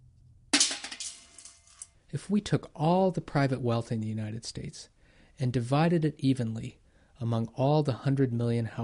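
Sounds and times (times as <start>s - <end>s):
BB falling into a metal soup pot: 0.6s - 1.9s
speech: 2.1s - 8.8s.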